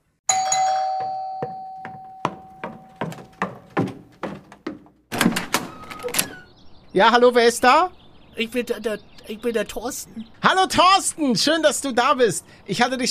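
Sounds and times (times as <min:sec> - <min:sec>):
doorbell at a large estate chiming: 0:00.3 - 0:03.5
speech: 0:07.0 - 0:13.0.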